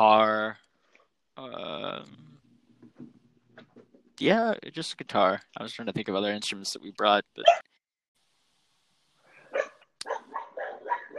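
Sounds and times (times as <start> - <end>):
speech: 0.0 - 0.6, 4.2 - 7.7
dog barking: 7.4 - 7.7, 9.4 - 11.1.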